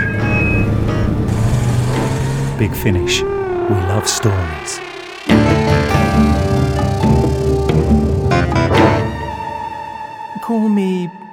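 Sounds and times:
car engine rumbling while driving: 0.0s - 9.1s
faint high tonal whine of a driving car: 2.1s - 9.7s
speech: 2.6s - 4.9s, 10.5s - 11.2s.

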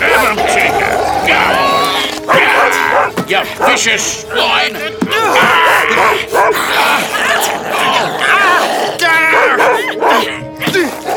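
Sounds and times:
dog barking loudly: 0.0s - 3.8s, 5.4s - 6.6s, 9.3s - 11.1s
dog snarling and growling: 0.0s - 3.8s, 4.8s - 11.1s
strained groaning voices: 0.0s - 11.1s
speech: 3.3s - 11.0s.

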